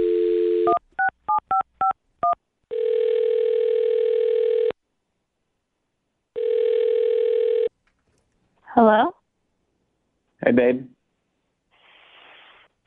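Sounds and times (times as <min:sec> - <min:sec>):
phone line dial tone: 0:00.0 - 0:00.8, 0:02.2 - 0:04.8, 0:06.4 - 0:07.7
long steady phone ringing tones: 0:00.0 - 0:01.6, 0:02.2 - 0:04.8, 0:06.4 - 0:07.7
speech: 0:08.8 - 0:09.2, 0:10.5 - 0:10.9.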